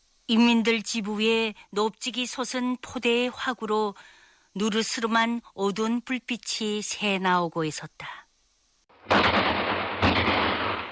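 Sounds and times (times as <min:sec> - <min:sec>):
speech: 0:00.3 - 0:08.2
loud gunshots: 0:09.0 - 0:10.9.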